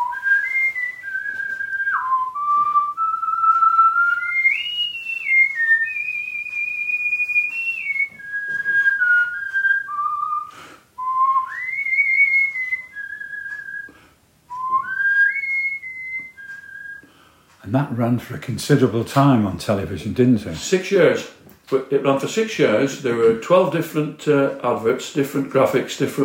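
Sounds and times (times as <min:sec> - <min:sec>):
man whistling a bank television advert jingle: 0:00.0 - 0:13.9, 0:14.5 - 0:17.0
speech: 0:17.7 - 0:26.2.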